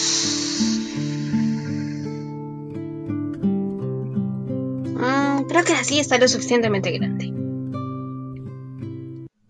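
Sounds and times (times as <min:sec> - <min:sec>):
person blowing to inflate a balloon: 0:00.0 - 0:02.4
soft music: 0:00.0 - 0:09.3
speech: 0:05.5 - 0:07.3.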